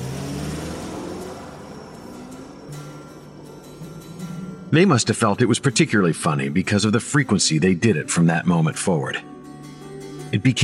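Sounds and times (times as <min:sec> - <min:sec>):
car engine starting and revving: 0:00.0 - 0:07.0
speech: 0:04.7 - 0:09.3, 0:10.3 - 0:10.6.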